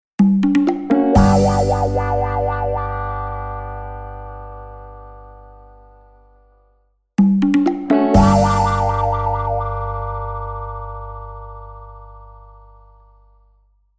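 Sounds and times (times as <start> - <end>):
guitar jingle: 0.4 - 5.2, 7.4 - 12.1.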